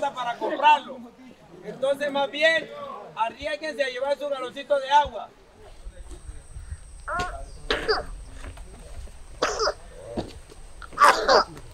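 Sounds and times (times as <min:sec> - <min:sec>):
speech: 0:00.1 - 0:05.4, 0:07.1 - 0:08.2
child coughing: 0:09.4 - 0:09.8, 0:11.0 - 0:11.4.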